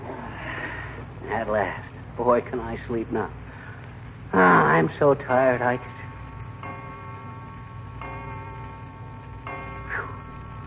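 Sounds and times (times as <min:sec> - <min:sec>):
steady low hum: 0:00.0 - 0:10.6
speech: 0:01.3 - 0:03.5, 0:04.3 - 0:06.0
clock striking the hour: 0:05.2 - 0:10.6.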